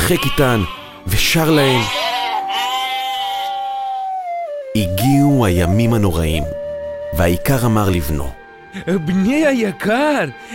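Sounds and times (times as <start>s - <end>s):
sheep bleating in a yard: 0.0s - 4.0s
speech: 0.1s - 2.1s, 4.8s - 10.5s.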